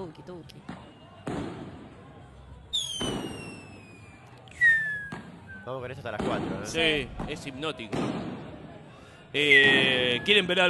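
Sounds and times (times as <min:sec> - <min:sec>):
high whistling firework rockets sliding down in pitch: 0:00.6 - 0:01.8, 0:02.7 - 0:06.4, 0:09.4 - 0:10.6
Fourth of July firework explosive bangs: 0:00.6 - 0:02.0, 0:02.8 - 0:04.1, 0:04.8 - 0:05.5, 0:06.1 - 0:08.8, 0:09.5 - 0:10.2
speech: 0:05.7 - 0:08.3, 0:09.3 - 0:10.6.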